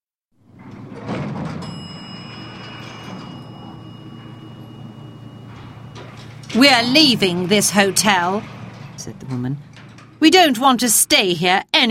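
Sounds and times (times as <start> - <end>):
sliding lift door rumbling shut: 0.4 - 10.5
lift motor mechanical hum with thin high whine: 0.4 - 10.9
speech: 6.6 - 11.8.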